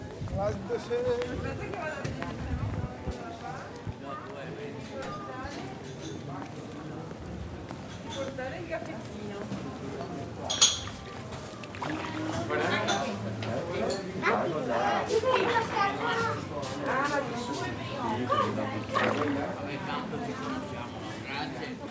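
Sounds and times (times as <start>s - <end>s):
people chattering and calling out in Italian: 0.0s - 21.8s
water splashing and lapping: 11.5s - 12.9s, 18.8s - 19.8s.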